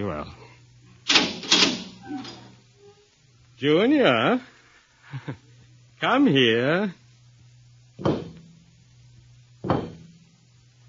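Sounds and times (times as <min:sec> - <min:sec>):
speech: 0:00.0 - 0:00.4, 0:03.6 - 0:04.5, 0:05.1 - 0:05.4, 0:06.0 - 0:07.0, 0:08.0 - 0:08.2
low steady hum: 0:00.0 - 0:10.8
door creaking as it swings open: 0:01.1 - 0:02.6.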